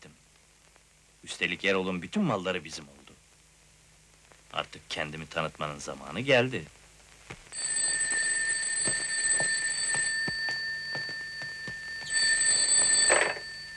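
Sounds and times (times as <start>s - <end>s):
speech: 1.3s - 3.0s, 4.6s - 7.4s
telephone ringing with an electronic trill: 7.5s - 13.7s.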